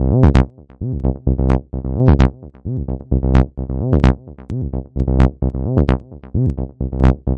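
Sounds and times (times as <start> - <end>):
TB-303 acid line at 130 bpm: 0.0 - 7.3.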